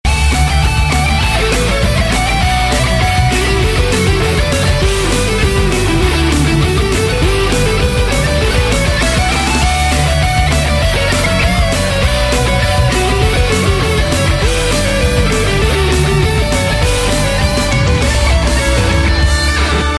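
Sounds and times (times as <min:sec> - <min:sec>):
rock music: 0:00.0 - 0:19.9.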